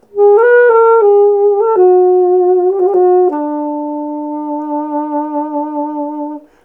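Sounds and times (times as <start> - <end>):
alto sax melody: 0.0 - 6.6.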